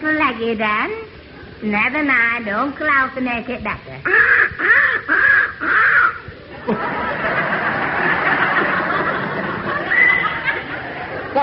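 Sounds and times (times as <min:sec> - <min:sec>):
speech: 0:00.0 - 0:06.0
young crow cawing: 0:04.1 - 0:06.3
laughter: 0:04.7 - 0:11.4.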